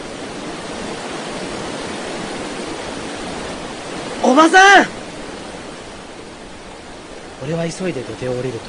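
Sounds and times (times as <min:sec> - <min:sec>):
fast-flowing river roaring below a bridge: 0:00.0 - 0:08.6
speech: 0:04.3 - 0:05.0, 0:07.5 - 0:08.6.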